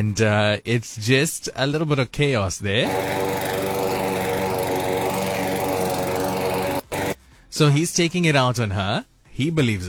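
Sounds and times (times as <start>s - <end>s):
speech: 0.0s - 3.8s, 7.5s - 9.8s
lawnmower small petrol engine running as the mower is driven: 2.8s - 7.2s.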